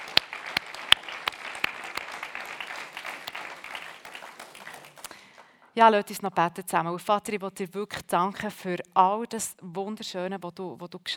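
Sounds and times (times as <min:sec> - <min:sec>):
audience applauding: 0:00.0 - 0:05.8
individual sharp claps: 0:00.0 - 0:05.8
speech: 0:05.8 - 0:11.1.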